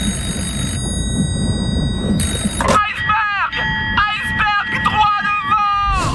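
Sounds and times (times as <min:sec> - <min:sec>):
low rumbling background: 0:00.0 - 0:04.9
ship's alarm bell ringing to warn of an iceberg: 0:00.0 - 0:05.8
man shouting loudly: 0:02.8 - 0:06.1.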